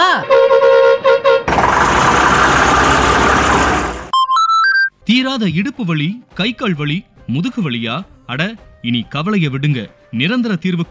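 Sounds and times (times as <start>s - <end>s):
bus horn blaring in musical toots: 0.0s - 1.5s
bus engine roar with a broad hiss: 0.0s - 4.1s
speech: 5.1s - 10.8s.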